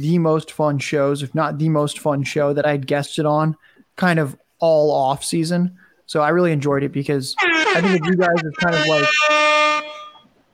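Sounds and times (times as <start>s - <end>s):
speech: 0.0s - 9.6s
air horn blast: 7.4s - 10.3s.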